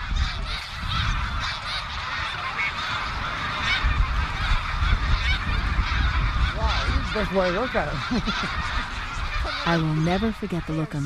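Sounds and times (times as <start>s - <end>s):
huge flock of snow geese honking: 0.0s - 11.0s
speech: 7.2s - 8.7s, 9.6s - 11.0s
laughter: 7.4s - 10.2s.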